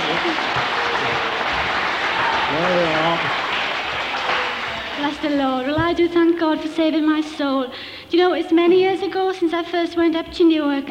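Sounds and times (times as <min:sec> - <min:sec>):
crowd applauding: 0:00.0 - 0:05.6
murmur of voices: 0:00.0 - 0:05.7
speech: 0:05.1 - 0:10.9.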